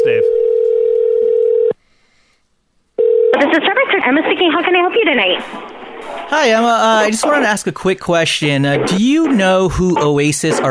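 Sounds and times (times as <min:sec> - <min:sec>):
telephone tone: 0:00.0 - 0:01.8, 0:03.0 - 0:03.4
speech: 0:03.6 - 0:10.7.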